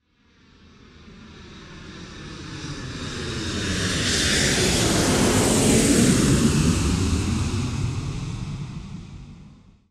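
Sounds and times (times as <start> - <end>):
supply airplane: 0.2 - 9.9.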